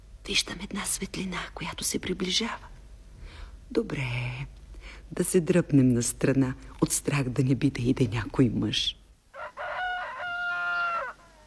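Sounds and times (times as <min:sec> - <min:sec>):
speech: 0:00.3 - 0:02.7, 0:03.7 - 0:09.0
rooster crowing before dawn: 0:09.3 - 0:11.4.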